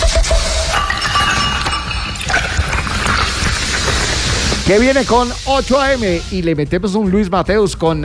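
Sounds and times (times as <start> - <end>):
glass clinking: 0.6 - 4.6
bright taps and scraping: 0.6 - 4.8
speech: 4.7 - 8.0.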